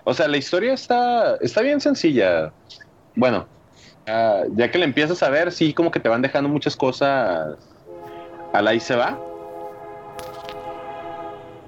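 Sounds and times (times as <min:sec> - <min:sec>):
speech: 0:00.1 - 0:07.7, 0:08.5 - 0:09.3
train horn sound effect: 0:07.8 - 0:11.6.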